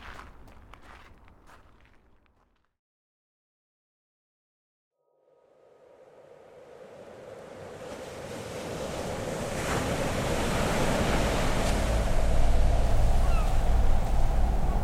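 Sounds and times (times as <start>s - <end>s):
surf breaking on an empty beach: 6.2s - 14.8s
wind buffeting the microphone: 6.8s - 14.8s.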